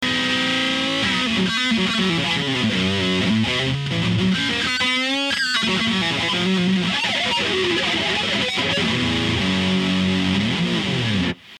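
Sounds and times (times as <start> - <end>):
guitar distortion effect pedal: 0.0 - 11.5.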